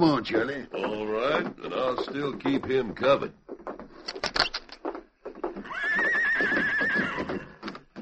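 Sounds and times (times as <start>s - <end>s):
speech: 0.0s - 3.4s
horse hoof clatters: 0.0s - 7.9s
horse whinny: 5.6s - 7.8s.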